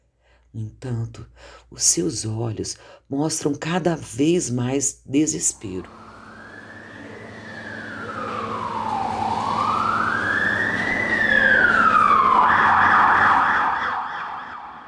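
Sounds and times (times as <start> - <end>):
speech: 0.5 - 6.1
low fire engine rumble: 5.6 - 13.1
fire engine siren wailing and yelping: 5.8 - 14.8.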